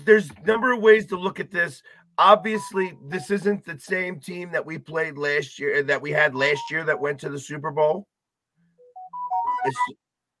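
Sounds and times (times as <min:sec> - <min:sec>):
speech: 0:00.0 - 0:08.1, 0:09.6 - 0:10.0
mobile phone ringtone of rising electronic notes: 0:08.8 - 0:09.9.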